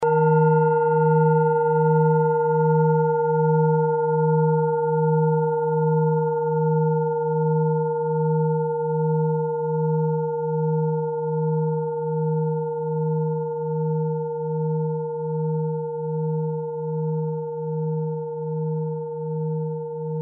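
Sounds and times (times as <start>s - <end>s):
set of singing bowls: 0.0s - 20.2s.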